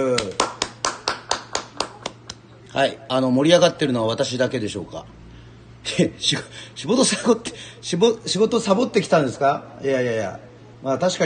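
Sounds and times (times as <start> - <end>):
single person clapping hands: 0.0 - 2.4
speech: 2.8 - 5.2, 5.9 - 11.2.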